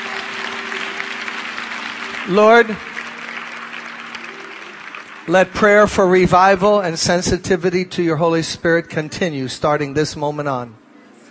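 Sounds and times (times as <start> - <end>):
audience applauding: 0.0 - 7.6
speech: 2.3 - 2.9, 5.3 - 10.8.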